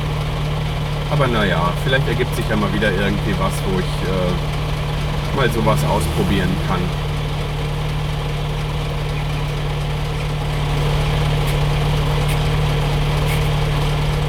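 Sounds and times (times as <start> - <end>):
truck idling at a traffic light: 0.0 - 14.2
speech: 1.1 - 4.6, 5.3 - 7.1.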